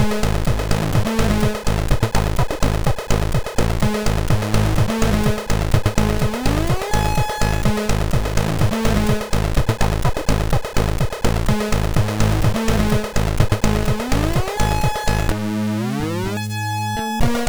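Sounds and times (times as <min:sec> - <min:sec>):
intro music on MOS6581R2 SID chip: 0:00.0 - 0:17.4.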